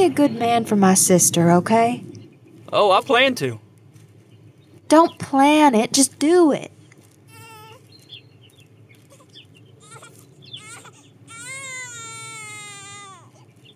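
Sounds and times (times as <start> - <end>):
speech: 0.0 - 2.1, 2.7 - 3.6, 4.9 - 6.7
steady low rumble of noise: 0.0 - 7.0
child crying in wails and a drawn-out howl: 7.3 - 7.8, 9.1 - 13.4.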